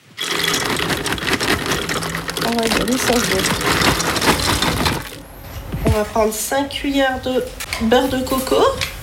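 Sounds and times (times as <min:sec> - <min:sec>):
cashew nuts poured into a food processor: 0:00.0 - 0:05.2
speech: 0:02.5 - 0:04.1, 0:06.0 - 0:08.9.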